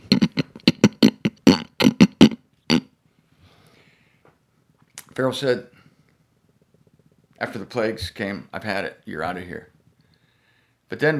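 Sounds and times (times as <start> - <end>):
person imitating pig grunts and snorts: 0.0 - 2.9
speech: 5.2 - 5.8, 7.5 - 9.7, 10.9 - 11.1.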